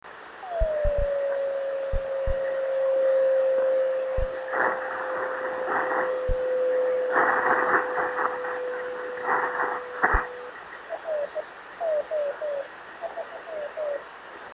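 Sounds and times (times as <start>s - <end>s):
drift net beacon signals: 0.5s - 14.0s.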